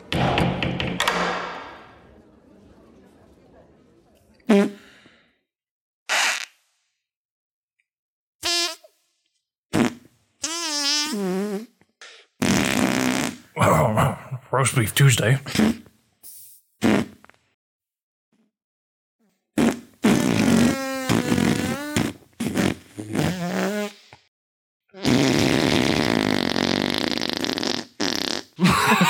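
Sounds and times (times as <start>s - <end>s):
person blowing raspberry fart noises: 0.0s - 2.1s, 4.4s - 5.2s, 6.1s - 7.0s, 8.4s - 13.8s, 15.4s - 17.4s, 19.6s - 24.3s, 25.0s - 29.0s
laughter: 1.7s - 4.4s, 28.6s - 29.0s
speech: 11.1s - 11.3s, 13.6s - 15.8s.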